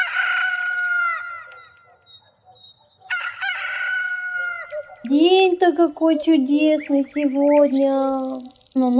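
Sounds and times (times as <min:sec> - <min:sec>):
rooster crowing: 0:00.0 - 0:01.6, 0:03.1 - 0:04.8
speech: 0:05.1 - 0:08.9.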